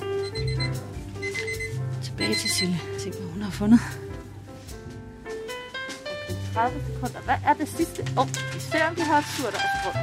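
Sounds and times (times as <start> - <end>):
alarm clock ringing with an electronic melody: 0.2 - 3.5
speech: 2.2 - 4.0, 6.5 - 10.0.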